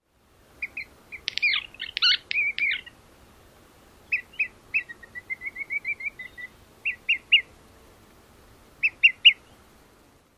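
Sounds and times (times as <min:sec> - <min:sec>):
olive-sided flycatcher encounter calls: 0:00.6 - 0:02.9, 0:04.1 - 0:07.5, 0:08.8 - 0:09.5
olive-sided flycatcher bill snaps: 0:01.2 - 0:02.9.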